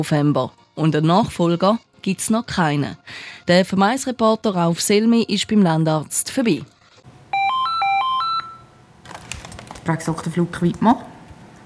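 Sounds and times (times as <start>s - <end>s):
speech: 0.0s - 6.7s, 9.8s - 11.1s
electronic telephone ringtone in a country doctor's practice: 7.3s - 8.8s.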